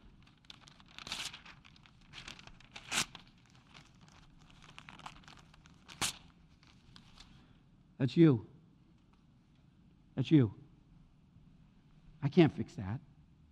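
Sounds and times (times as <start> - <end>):
paper being crumpled: 0.1 - 7.3
speech: 8.0 - 8.5, 10.2 - 10.6, 12.3 - 13.1.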